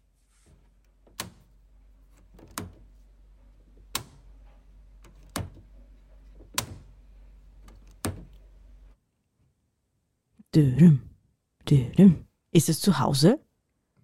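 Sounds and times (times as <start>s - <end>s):
low constant hum: 0.0s - 9.0s
door opening and closing: 0.5s - 3.0s, 3.8s - 7.0s, 7.6s - 8.5s
speech: 10.5s - 11.1s, 11.7s - 13.4s.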